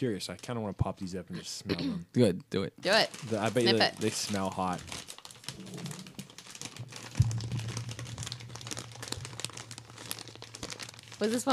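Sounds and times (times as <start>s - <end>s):
speech: 0.0s - 5.9s, 11.2s - 11.5s
bag of chips crinkling while being handled: 2.8s - 11.5s.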